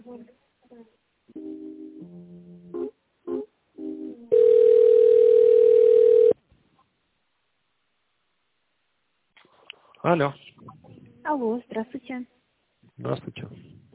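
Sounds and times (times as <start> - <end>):
telephone ringback tone: 4.3 - 6.4
speech: 10.0 - 10.5, 11.3 - 12.4, 13.0 - 13.7.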